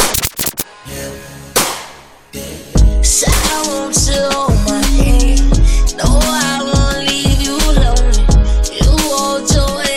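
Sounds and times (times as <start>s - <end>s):
gunshots: 0.0s - 0.6s
rap music: 2.8s - 9.9s
speech: 3.0s - 4.5s.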